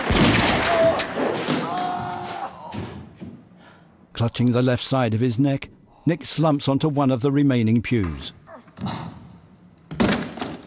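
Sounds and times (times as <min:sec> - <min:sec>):
gunshots in a shootout: 0:00.0 - 0:01.6
speech: 0:04.2 - 0:09.2.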